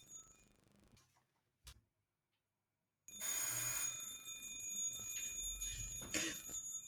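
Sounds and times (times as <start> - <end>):
small hand bell ringing: 3.1 - 6.8.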